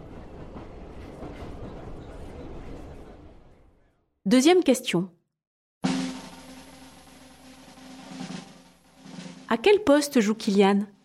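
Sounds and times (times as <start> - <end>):
metro train rumbling along the rails: 0.0 - 3.8
speech: 4.3 - 5.2, 9.5 - 11.0.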